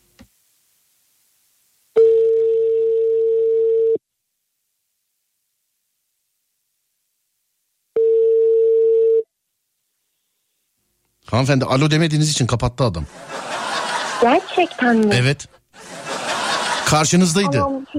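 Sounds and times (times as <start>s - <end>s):
telephone ringback tone while a call is being placed: 2.0s - 4.0s, 8.0s - 9.2s
speech: 11.3s - 13.3s, 14.2s - 15.6s, 16.9s - 17.9s
laughter: 13.0s - 17.9s.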